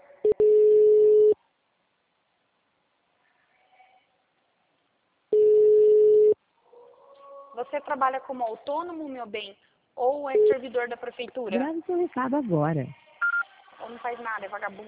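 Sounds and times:
unanswered telephone call ringback tone: 0.2s - 1.4s, 5.3s - 6.4s
speech: 7.7s - 13.0s, 13.9s - 14.8s.

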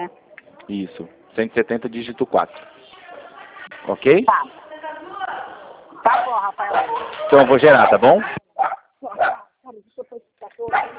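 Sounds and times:
speech: 0.0s - 2.8s, 3.9s - 4.6s, 6.0s - 8.4s
dog barking during a phone call: 4.3s - 4.5s, 6.0s - 7.1s, 7.8s - 9.6s, 10.7s - 10.9s
dog yipping: 7.8s - 9.6s, 10.7s - 10.9s.

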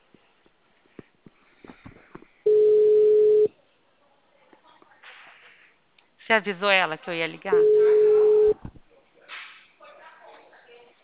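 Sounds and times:
telephone dial tone on an auto-dialer line: 2.5s - 3.5s
speech: 6.3s - 8.0s.

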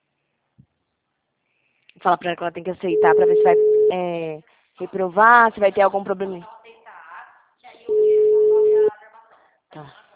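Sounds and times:
speech: 2.0s - 6.5s, 9.8s - 10.0s
telephone ringing with a steady mid-pitched tone: 2.9s - 4.0s, 7.9s - 8.9s.

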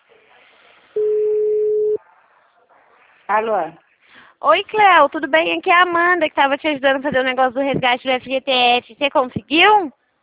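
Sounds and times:
telephone ringback tone while a call is being placed: 1.0s - 2.0s
speech: 3.3s - 3.8s, 4.4s - 10.0s.

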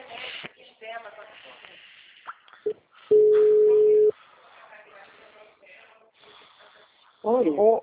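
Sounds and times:
busy tone after a phone call dropped: 3.1s - 4.1s.

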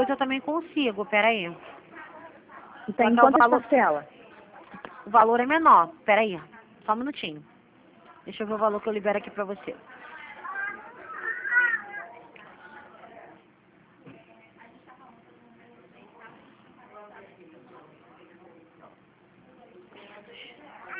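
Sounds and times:
speech: 0.0s - 1.8s, 2.9s - 4.2s, 5.1s - 7.5s, 8.2s - 9.9s
background noise: 0.0s - 20.9s
baby crying: 10.4s - 12.1s.

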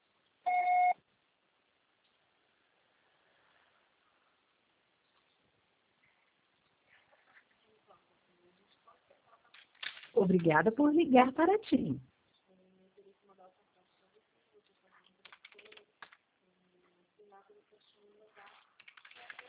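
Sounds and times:
answering machine beep: 0.5s - 1.0s
speech: 10.2s - 12.1s.

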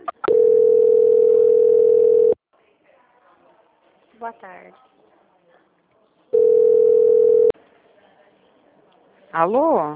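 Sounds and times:
telephone tone while a call is being transferred: 0.2s - 2.4s, 6.4s - 7.5s
speech: 4.2s - 5.0s, 9.3s - 9.9s.

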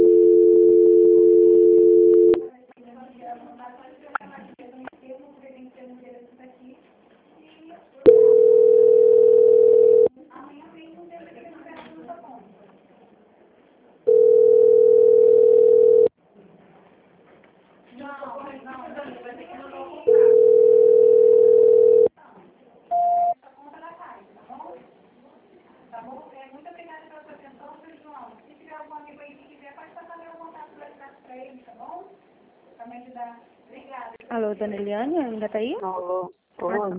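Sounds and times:
telephone line tones while a call is transferred: 0.0s - 2.5s, 8.1s - 10.1s, 14.1s - 16.1s, 20.1s - 22.1s
speech: 34.7s - 36.3s.

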